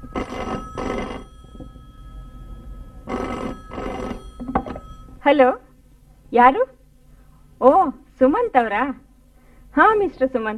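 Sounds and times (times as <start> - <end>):
telephone bell ringing in a home: 0.0 - 5.2
speech: 5.3 - 5.6, 6.3 - 6.8, 7.6 - 9.0, 9.8 - 10.5.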